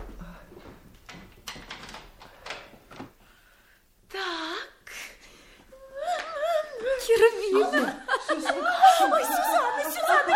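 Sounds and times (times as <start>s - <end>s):
door latch rattling: 1.1s - 2.7s
laughter: 6.1s - 10.3s.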